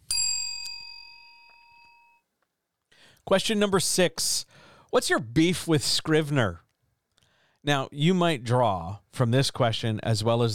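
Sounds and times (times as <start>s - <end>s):
bright metallic bell strike: 0.0s - 2.2s
speech: 3.2s - 6.6s, 7.6s - 10.5s.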